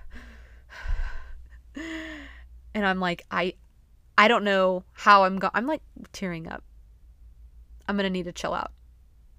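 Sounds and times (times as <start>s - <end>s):
person gasping: 0.0s - 2.4s
heavy excited breathing: 0.0s - 2.5s
speech: 2.8s - 3.6s, 4.2s - 6.7s, 7.9s - 8.8s.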